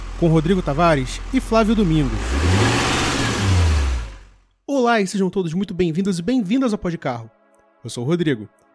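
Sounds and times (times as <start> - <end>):
classic diesel engine clattering and revving: 0.0 - 4.4
speech: 0.2 - 2.7, 4.9 - 8.6.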